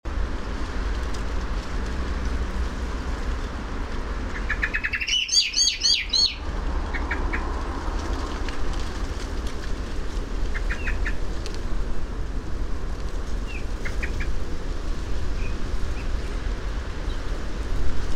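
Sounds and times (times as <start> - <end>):
loud low rumbling noise: 0.1 - 18.1
common blackbird Turdus merula chattering: 4.3 - 7.4.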